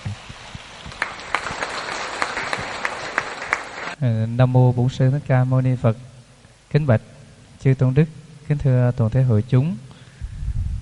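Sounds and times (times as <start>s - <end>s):
audience applauding: 0.0s - 4.0s
sharp individual claps: 0.1s - 4.0s
speech: 4.0s - 6.1s, 6.7s - 9.8s.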